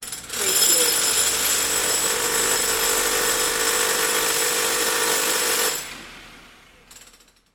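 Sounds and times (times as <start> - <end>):
construction tool rattling: 0.0 - 5.9.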